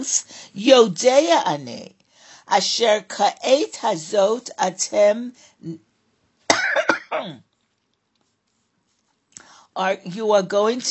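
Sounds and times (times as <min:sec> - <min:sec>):
speech: 0:00.0 - 0:05.9, 0:06.8 - 0:07.5, 0:09.8 - 0:10.8
short harsh coughs: 0:06.5 - 0:07.4.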